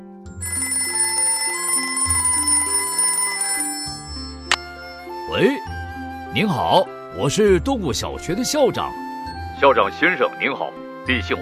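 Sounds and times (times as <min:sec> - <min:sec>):
telephone electronic ringtone with stepped tones over bass notes: 0:00.3 - 0:05.5
speech: 0:05.3 - 0:09.0, 0:09.6 - 0:11.3.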